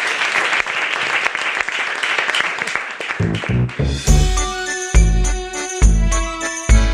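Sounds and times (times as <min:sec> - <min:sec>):
enthusiastic crowd applause: 0:00.0 - 0:04.4
loud music track with heavy bass notes: 0:03.2 - 0:06.9.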